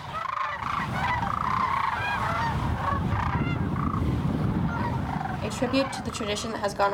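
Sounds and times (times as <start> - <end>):
large flock of cranes calling along the Platte River: 0.0 - 6.6
speech: 5.6 - 6.9.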